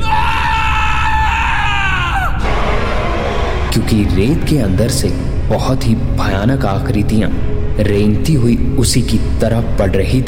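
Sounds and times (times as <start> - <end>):
conductor screaming in terror in a desert: 0.0 - 2.5
steady low rumble of noise: 2.4 - 10.0
speech: 3.9 - 10.2.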